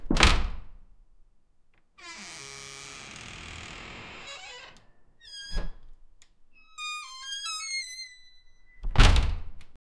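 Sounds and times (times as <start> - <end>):
sharp creak when opening: 2.0 - 6.0, 6.6 - 9.5.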